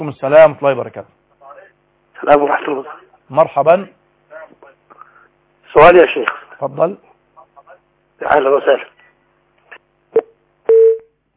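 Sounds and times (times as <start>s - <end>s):
speech: 0.0s - 1.2s, 2.2s - 4.6s, 5.7s - 7.1s, 8.2s - 8.9s
telephone line tone after a dropped call: 10.2s - 11.1s.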